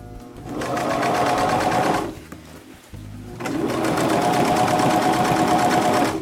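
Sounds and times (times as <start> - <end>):
sewing machine stitching fabric: 0.4 - 2.2, 3.3 - 6.2.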